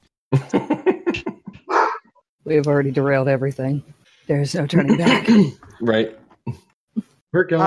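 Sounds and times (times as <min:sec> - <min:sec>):
laughter: 0:00.4 - 0:01.6
dog barking: 0:01.7 - 0:02.1
speech: 0:02.5 - 0:06.6, 0:07.3 - 0:07.6.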